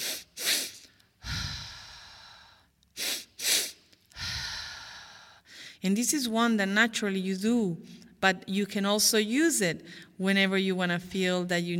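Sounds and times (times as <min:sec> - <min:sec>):
long relaxing exhalation through the mouth: 0:00.0 - 0:05.4
two quick inhalations through the nose: 0:00.0 - 0:05.8
speech: 0:05.8 - 0:11.7.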